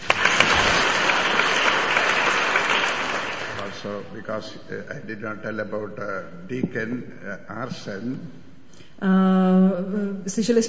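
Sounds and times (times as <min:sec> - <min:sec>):
audience applause for a visiting center director: 0:00.0 - 0:04.0
speech: 0:03.8 - 0:08.4, 0:09.0 - 0:10.6.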